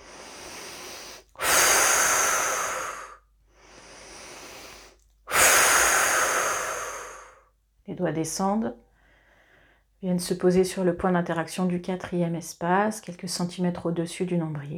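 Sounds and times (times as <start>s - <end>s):
long airy breaths during breathing exercise: 0.0s - 7.5s, 9.0s - 9.9s
loud hissing exhales during breathing exercise: 0.0s - 7.5s
speech: 8.0s - 8.8s, 10.0s - 14.7s.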